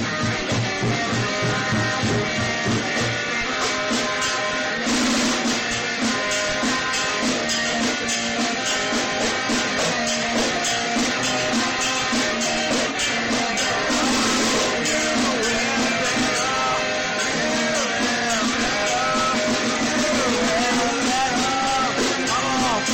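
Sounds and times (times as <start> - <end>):
person screaming rock vocals: 0.2 - 4.9, 5.6 - 22.9.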